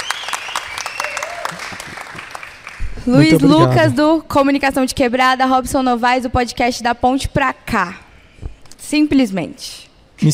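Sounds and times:
audience applause welcoming guests: 0.0s - 3.8s
speech: 3.1s - 8.0s, 8.8s - 10.3s.

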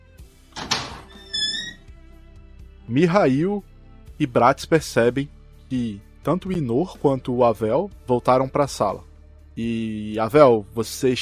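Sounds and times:
door latch rattling clunk: 0.6s - 1.8s
speech: 2.9s - 11.1s.

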